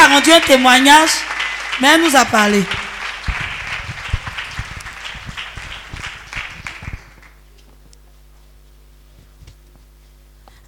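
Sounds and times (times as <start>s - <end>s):
congregation clapping during a church service: 0.0s - 7.5s
speech: 0.1s - 2.8s.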